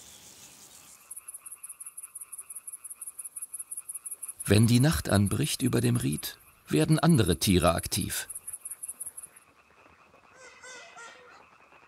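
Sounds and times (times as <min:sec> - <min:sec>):
chorus of frogs croaking at dusk: 0:00.8 - 0:11.8
high chirping pulses: 0:01.1 - 0:09.4
speech: 0:04.5 - 0:08.3.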